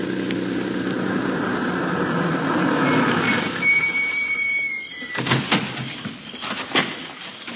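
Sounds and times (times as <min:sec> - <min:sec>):
car engine rumbling while turning in at a hotel: 0:00.0 - 0:07.5
thin high squeal of a slowing car: 0:02.7 - 0:05.3.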